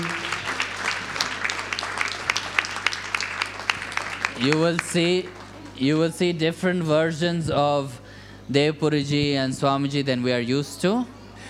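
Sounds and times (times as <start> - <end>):
audience applause: 0.0 - 5.9
speech: 4.4 - 11.2.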